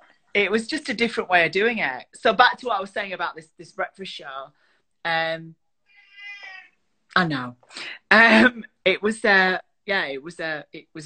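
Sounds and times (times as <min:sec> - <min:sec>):
speech: 0:00.4 - 0:05.6, 0:07.1 - 0:11.0
cat meowing: 0:05.9 - 0:06.8.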